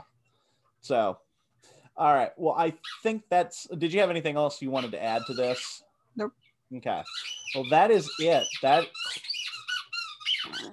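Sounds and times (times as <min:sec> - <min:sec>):
speech: 0:00.8 - 0:01.2, 0:02.0 - 0:09.3, 0:10.4 - 0:10.7
dog's squeaky ball toy squeaking: 0:02.7 - 0:03.1, 0:04.6 - 0:05.8, 0:07.0 - 0:10.7.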